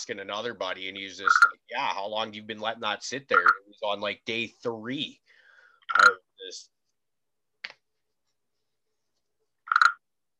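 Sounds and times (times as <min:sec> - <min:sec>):
speech: 0:00.0 - 0:05.3, 0:05.9 - 0:06.8
frog croaking: 0:01.2 - 0:01.7, 0:03.3 - 0:03.8, 0:05.9 - 0:06.2, 0:09.6 - 0:10.1.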